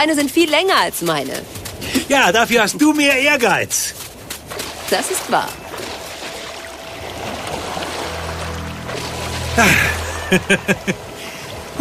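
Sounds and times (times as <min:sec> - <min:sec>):
speech: 0:00.0 - 0:04.0, 0:04.9 - 0:05.6, 0:09.6 - 0:11.0
water sloshing and splashing as someone wades navel-deep through sea waves at a beach: 0:00.0 - 0:11.7
quick splashes in a steady rhythm: 0:00.2 - 0:10.2
laughter: 0:09.6 - 0:11.1.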